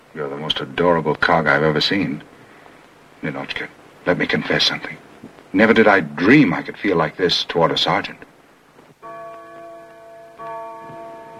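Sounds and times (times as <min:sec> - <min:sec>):
speech: 0:00.1 - 0:02.3, 0:03.2 - 0:08.3
wall clock striking midnight: 0:09.0 - 0:11.3.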